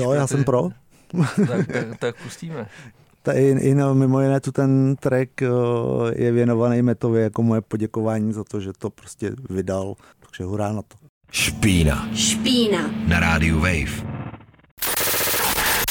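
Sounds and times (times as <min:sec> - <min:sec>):
speech: 0:00.0 - 0:14.2
laughter: 0:00.2 - 0:02.9
harsh noisy music track with crackling static-like roar: 0:11.3 - 0:15.8.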